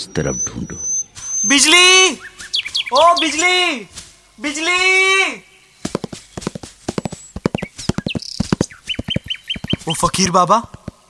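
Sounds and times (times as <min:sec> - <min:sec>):
faint whistly or voice-like sounds: 0:00.0 - 0:03.5, 0:07.1 - 0:10.2
speech: 0:00.0 - 0:05.5, 0:09.9 - 0:10.8
mare's hooves clip-clopping: 0:05.8 - 0:11.0.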